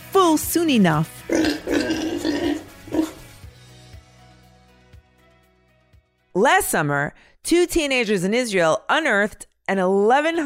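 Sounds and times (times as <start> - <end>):
speech: 0.4 - 1.7, 6.4 - 10.4
pig oinking and grunting: 1.3 - 3.3.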